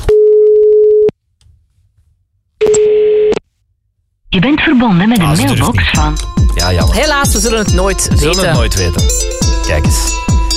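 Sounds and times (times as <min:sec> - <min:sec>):
telephone ringback tone while a call is placed: 0:00.1 - 0:01.1
speech: 0:04.4 - 0:10.4.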